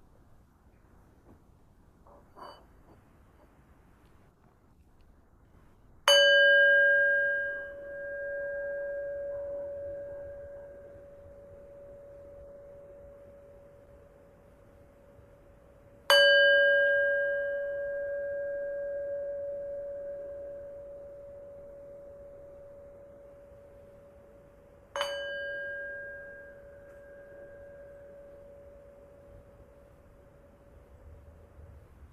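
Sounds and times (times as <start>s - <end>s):
meditation bell struck for an evening sitting meditation: 6.1s - 31.0s.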